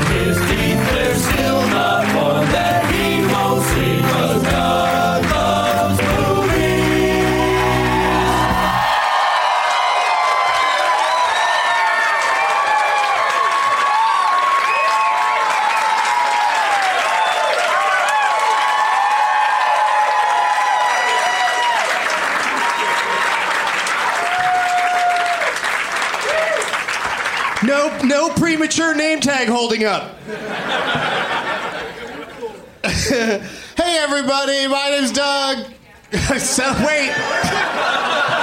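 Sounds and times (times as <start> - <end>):
live audience applauding: 0.0 - 28.6
whoops: 7.9 - 23.4, 24.1 - 25.6, 26.2 - 26.8
speech: 29.6 - 30.2, 33.2 - 38.1
laughter: 30.2 - 33.5, 36.2 - 38.4.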